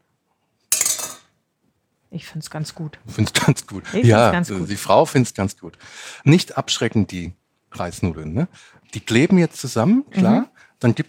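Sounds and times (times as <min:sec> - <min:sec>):
utensils clinking against dishware as cooked rice noodles are served onto a plate: 0:00.7 - 0:01.3
speech: 0:02.1 - 0:11.0.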